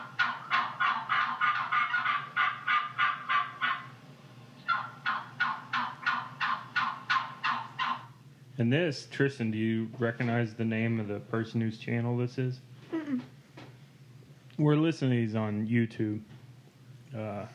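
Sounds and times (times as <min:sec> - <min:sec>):
male turkey gobbling: 0:00.0 - 0:03.9, 0:04.6 - 0:08.2
speech: 0:08.6 - 0:13.3, 0:14.6 - 0:16.3, 0:17.1 - 0:17.5.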